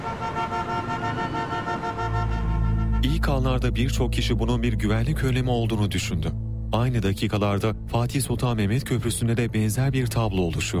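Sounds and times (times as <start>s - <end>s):
car horns honking in a jammed traffic queue on the Bosphorus Bridge in Istanbul: 0.0s - 3.3s
speech: 3.0s - 10.7s.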